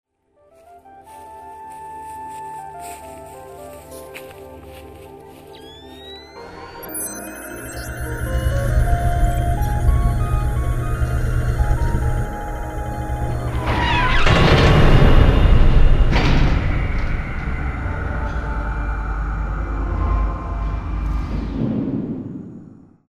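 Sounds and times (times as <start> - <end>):
entering sound effect: 5.5 - 22.9.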